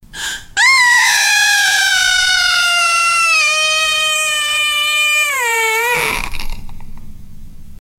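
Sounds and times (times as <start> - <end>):
person crying: 0.6 - 6.3.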